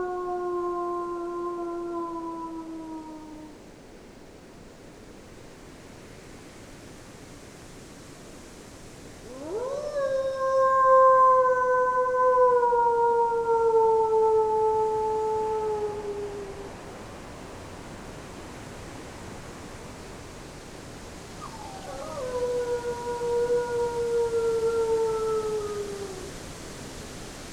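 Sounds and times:
person imitating a wolf howl: 0.0 - 3.6, 9.3 - 16.8, 21.4 - 26.3
steady wind in the trees: 0.0 - 27.5.

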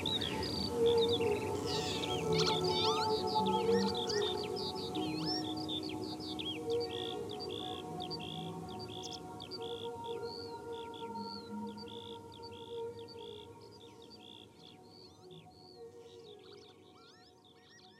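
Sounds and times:
dense birdsong on the marshes in spring: 0.0 - 17.9.

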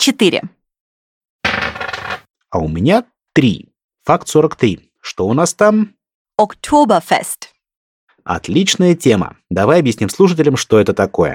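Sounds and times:
speech: 0.0 - 0.6, 2.5 - 7.5, 8.2 - 11.3
dice rolling on a hard tabletop: 1.5 - 2.2.

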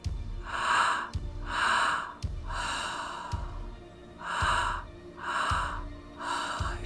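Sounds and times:
person breathing out during a guided breathing exercise: 0.4 - 3.6, 4.2 - 6.8.

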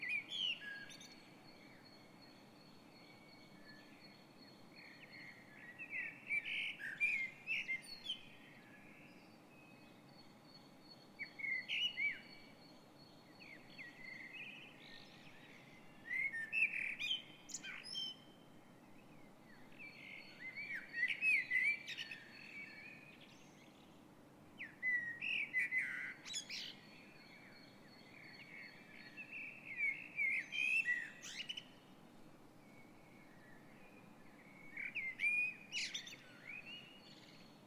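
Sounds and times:
dawn chorus of blackbird, robin and wren singing: 0.0 - 37.6.

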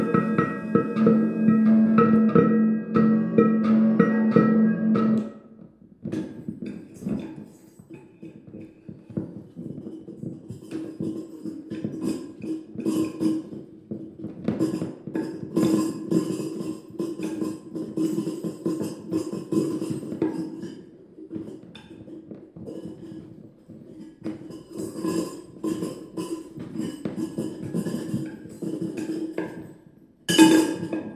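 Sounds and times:
dense ringing metallic drone: 0.0 - 5.4
clinks, taps and scrapes of junk on a tabletop via contact mic: 6.5 - 31.1.

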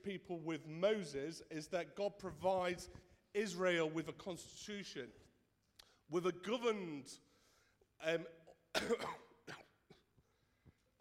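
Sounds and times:
speech: 0.0 - 5.3, 6.1 - 7.3, 8.0 - 9.6
harsh raspy coughs: 8.4 - 10.2.

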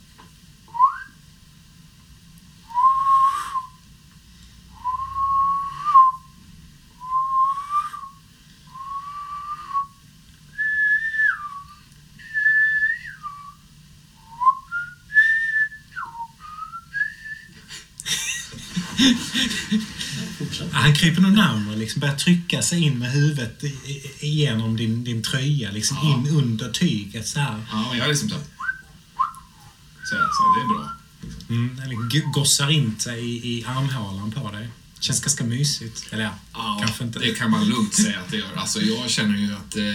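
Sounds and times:
person whistling to a pet: 0.7 - 1.2, 2.7 - 3.8, 4.8 - 6.3, 7.0 - 10.0, 10.6 - 13.6, 14.2 - 17.6, 28.6 - 31.1
laughter: 17.6 - 21.0, 37.2 - 39.2
speech: 19.0 - 20.0, 20.6 - 28.6, 32.1 - 39.9.

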